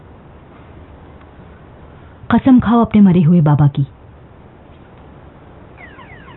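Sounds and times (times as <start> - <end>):
steady noise: 0.0 - 6.3
speech: 2.3 - 4.0
car safety alarm warbling electronic tones: 5.8 - 6.3.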